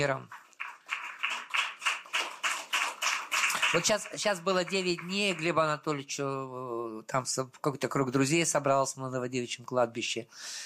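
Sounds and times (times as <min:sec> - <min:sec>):
speech: 0:00.0 - 0:00.4, 0:03.7 - 0:10.6
audience clapping in steady rhythmic unison: 0:00.0 - 0:06.1.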